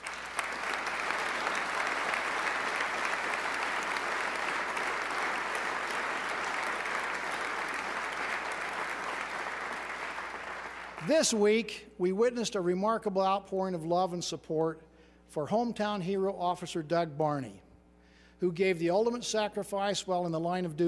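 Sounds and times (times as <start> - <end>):
large audience applauding in a legislative chamber: 0.0 - 11.1
speech: 11.1 - 17.6, 18.4 - 20.8.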